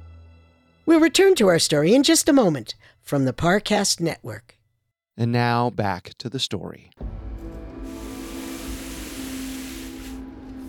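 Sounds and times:
speech: 0:00.9 - 0:04.6, 0:05.2 - 0:07.1
hose spraying water to wash down a mess: 0:07.8 - 0:10.6.

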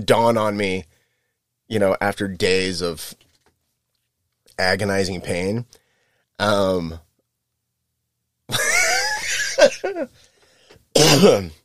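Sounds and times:
speech: 0:00.0 - 0:00.9, 0:01.7 - 0:03.2, 0:04.6 - 0:05.8, 0:06.4 - 0:07.0, 0:09.6 - 0:10.3, 0:11.0 - 0:11.6
raspy hacking cough with a wheezy catch: 0:11.0 - 0:11.6
short raspy throat clearing: 0:11.0 - 0:11.6.

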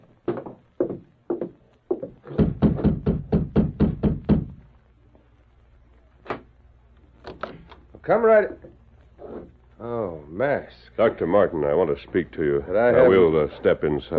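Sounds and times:
man knocking on a doctor's wooden door: 0:00.3 - 0:04.7
speech: 0:08.1 - 0:08.7, 0:09.8 - 0:14.1.

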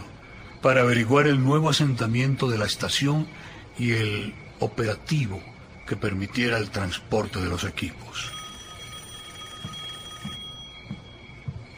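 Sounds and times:
speech: 0:00.6 - 0:08.4
telephone ringing with a high electronic tone: 0:08.0 - 0:11.5
soft low thumps: 0:09.6 - 0:11.7.

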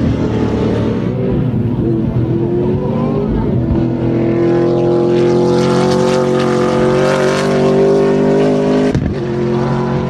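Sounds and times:
prototype racing car engine roaring at high revs: 0:00.0 - 0:10.0.

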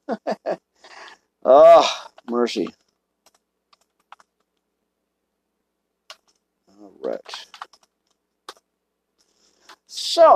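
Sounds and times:
speech: 0:01.5 - 0:02.8
clicks on a computer keyboard with a stuck key: 0:03.2 - 0:04.6, 0:06.1 - 0:06.4, 0:07.0 - 0:08.6.

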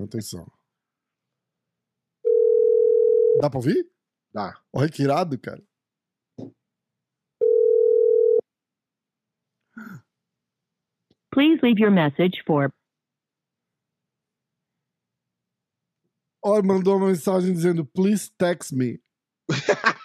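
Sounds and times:
speech: 0:00.0 - 0:00.6, 0:03.4 - 0:05.7, 0:06.4 - 0:06.6, 0:11.4 - 0:12.8, 0:16.4 - 0:20.0
electronic ringback tones of a phone call: 0:02.2 - 0:03.4, 0:07.4 - 0:08.4
laughter: 0:19.5 - 0:20.0.

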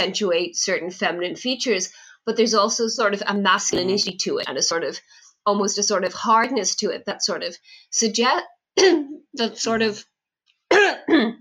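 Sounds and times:
speech: 0:00.0 - 0:10.1, 0:10.8 - 0:11.4
person coughing: 0:03.7 - 0:04.0, 0:10.7 - 0:11.4.

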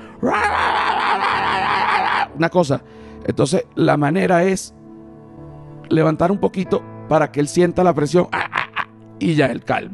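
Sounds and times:
speech: 0:00.2 - 0:00.5, 0:02.4 - 0:04.8, 0:05.9 - 0:08.6, 0:09.2 - 0:09.9
person's voice imitating demonic screams of an aggressive male dog: 0:00.2 - 0:02.4.

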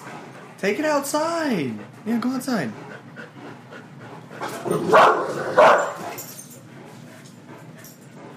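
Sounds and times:
speech: 0:00.6 - 0:02.9, 0:04.7 - 0:05.9
two 200-plus-pound dogs barking indoors: 0:04.4 - 0:06.3.

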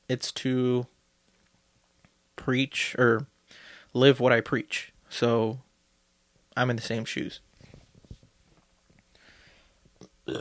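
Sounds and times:
speech: 0:00.1 - 0:00.9, 0:02.4 - 0:05.7, 0:06.6 - 0:07.5
faint shuffling: 0:07.2 - 0:10.0
loud burp: 0:10.2 - 0:10.4.

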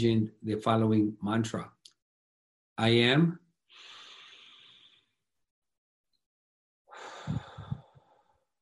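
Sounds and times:
speech: 0:00.0 - 0:01.8, 0:02.8 - 0:03.9
deep breath in and out: 0:03.7 - 0:05.2, 0:06.9 - 0:08.5.

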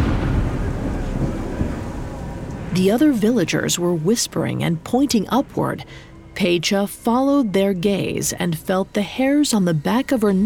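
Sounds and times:
deep rolling thunder of an approaching storm: 0:00.0 - 0:04.7
speech: 0:02.8 - 0:10.4.

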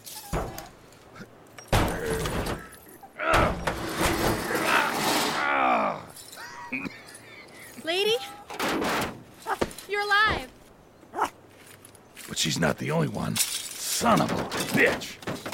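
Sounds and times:
tire iron clanking and scraping while prying at a door: 0:00.0 - 0:07.4, 0:08.2 - 0:09.9, 0:13.2 - 0:15.5
person grunting with strain: 0:05.4 - 0:06.1
speech: 0:12.6 - 0:15.2.

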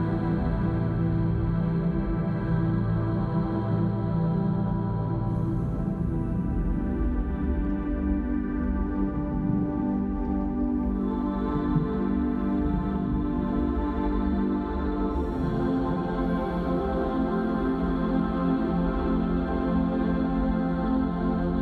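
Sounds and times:
tranquil water ambience: 0:00.0 - 0:21.6
constant low hum: 0:05.4 - 0:17.9.

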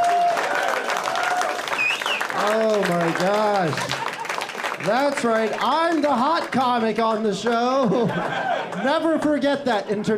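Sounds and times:
comedy show audience applauding after a roast battle: 0:00.0 - 0:09.4
speech: 0:02.4 - 0:04.0, 0:04.8 - 0:10.1
laughter: 0:03.1 - 0:04.5, 0:07.5 - 0:10.1.

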